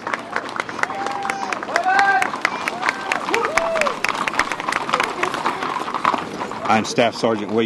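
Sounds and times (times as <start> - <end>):
people clapping: 0.0 - 5.6
outdoor crowd murmuring and chattering at an inauguration parade: 0.0 - 7.6
speech: 6.7 - 7.6.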